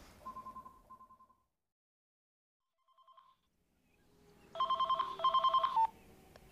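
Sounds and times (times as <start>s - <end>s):
mobile phone ringing in electronic trilling bursts: 0.2s - 1.4s, 2.8s - 3.5s, 4.6s - 5.9s.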